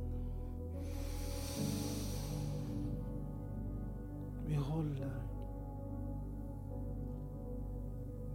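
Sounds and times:
low sustained musical drone: 0.0s - 8.3s
long deep breath drawn in: 0.1s - 3.1s
speech: 4.8s - 5.3s.

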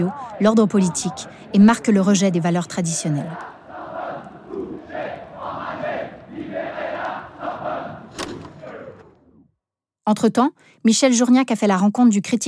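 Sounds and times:
speech: 0.0s - 3.6s, 10.1s - 12.4s
riot crowd shouting during street clashes: 0.0s - 9.4s.

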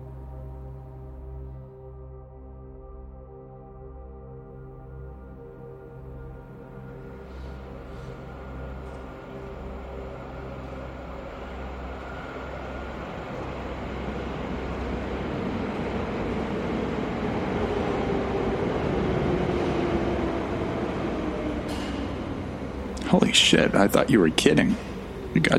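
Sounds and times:
faint descending whine of a slowing train: 0.0s - 25.5s
converted train rumbling in with mechanical roar and rattling: 6.0s - 25.5s
speech: 23.1s - 24.9s.

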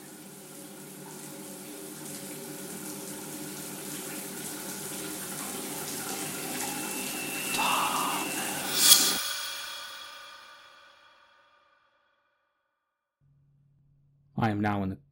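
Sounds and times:
shower water running: 0.0s - 9.1s
speech: 14.4s - 15.1s.

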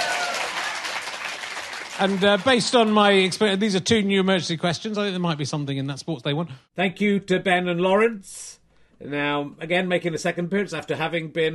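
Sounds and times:
crowd applauding: 0.0s - 3.6s
speech: 2.0s - 11.5s.

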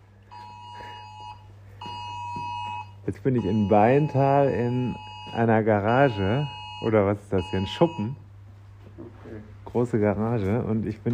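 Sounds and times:
low constant hum: 0.0s - 11.1s
electronic alarm ringing: 0.3s - 8.2s
speech: 3.1s - 8.2s, 9.4s - 11.1s.

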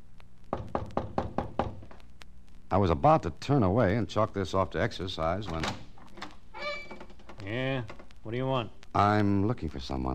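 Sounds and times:
knocking on a wooden door: 0.6s - 1.8s
speech: 2.7s - 5.8s, 7.5s - 10.1s.

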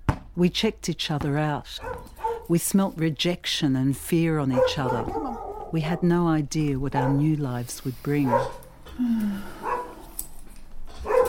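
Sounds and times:
speech: 0.4s - 9.6s
dog barking and yipping: 1.8s - 2.5s, 4.5s - 6.1s, 7.0s - 7.3s, 8.2s - 8.6s, 9.6s - 10.0s, 11.0s - 11.2s.

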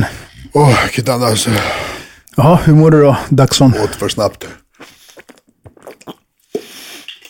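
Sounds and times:
speech: 0.5s - 4.9s
person gulping bottled water: 4.8s - 7.2s.

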